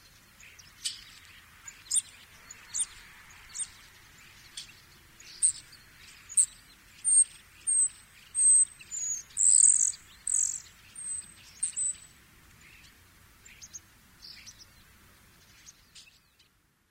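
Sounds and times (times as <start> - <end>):
soft steady background hiss: 0.0 - 16.8
migrating common starlings giving flight calls: 1.0 - 13.0.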